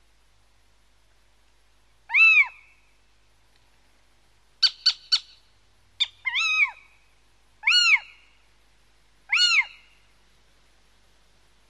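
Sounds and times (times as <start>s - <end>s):
Little owl giving short sharp yelps: 2.1s - 2.8s, 4.6s - 5.4s, 6.0s - 7.0s, 7.6s - 8.4s, 9.3s - 10.0s.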